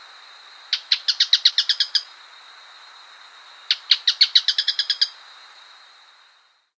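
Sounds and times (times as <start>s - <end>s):
bird singing rattling bursts: 0.7s - 2.1s, 3.7s - 5.1s.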